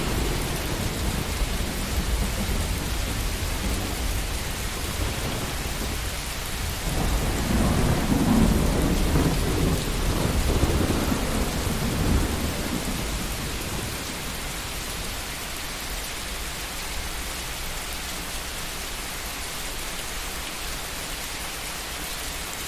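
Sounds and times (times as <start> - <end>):
low rolling thunder at night: 0.0 - 14.8
rain falling at night: 0.0 - 22.6.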